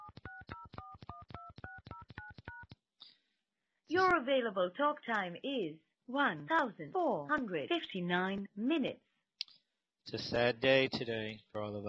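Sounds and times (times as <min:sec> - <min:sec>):
telephone keypad tones entering a PIN into an automated phone menu: 0:00.0 - 0:02.7
speech: 0:03.9 - 0:09.0, 0:10.1 - 0:11.8.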